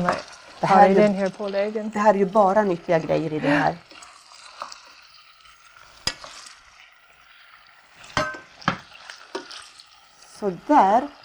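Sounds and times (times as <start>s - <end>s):
speech: 0.0s - 4.0s, 10.4s - 11.2s
food browning in a frying pan: 0.0s - 11.2s
clinks and scrapes from stirring in a frying pan: 3.8s - 10.4s.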